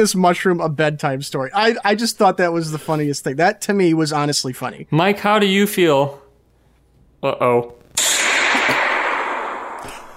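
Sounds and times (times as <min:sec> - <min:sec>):
speech: 0:00.0 - 0:06.2, 0:07.2 - 0:07.8
gunshot sound effect in a game: 0:08.0 - 0:10.1.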